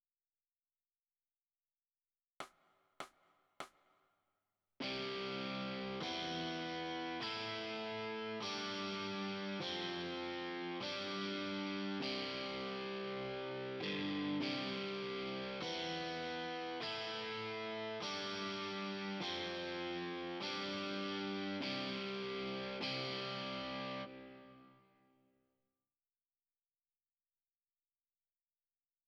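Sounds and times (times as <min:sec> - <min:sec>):
overdrive electric guitar: 0:04.8 - 0:24.8.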